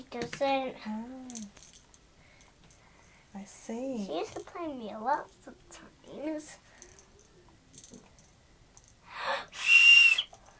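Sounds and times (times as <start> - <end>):
speech: 0.0 - 1.5, 3.4 - 6.7
child blowing a toy whistle: 9.5 - 10.3.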